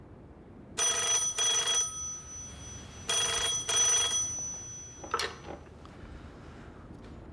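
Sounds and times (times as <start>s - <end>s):
telephone ringing: 0.8s - 5.8s.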